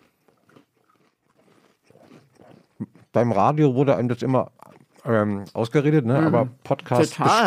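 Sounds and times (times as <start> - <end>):
biting and chewing a large cookie: 0.0 - 5.6
speech: 3.1 - 7.4.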